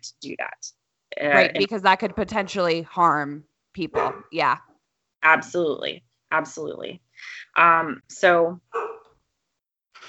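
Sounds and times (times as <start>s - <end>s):
speech: 0.0s - 8.9s
dogs barking: 3.9s - 4.4s, 8.7s - 9.1s.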